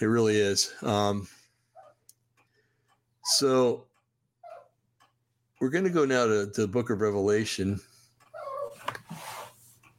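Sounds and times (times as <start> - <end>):
speech: 0.0 - 1.4, 3.3 - 3.9, 5.6 - 7.9
small dog whining and yelping: 1.7 - 2.0, 4.4 - 4.8, 8.3 - 8.9.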